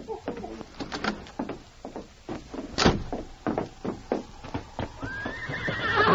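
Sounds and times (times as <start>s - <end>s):
horse hooves clopping on a beach: 0.0s - 6.1s
horse whinnying: 5.0s - 6.1s.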